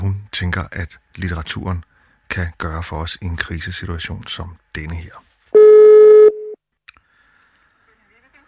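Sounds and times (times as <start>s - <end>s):
speech: 0.4s - 5.3s
outgoing call telephone ringing tone: 5.6s - 6.6s.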